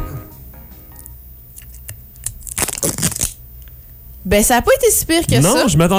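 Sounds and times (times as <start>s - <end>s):
thin plastic wrap tearing from a bottle cap: 1.6s - 3.4s
speech: 2.8s - 3.1s, 4.2s - 5.9s.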